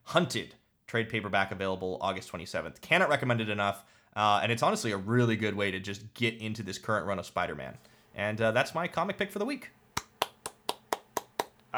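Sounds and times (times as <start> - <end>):
speech: 0.1 - 9.8
sharp hand claps: 8.2 - 11.7.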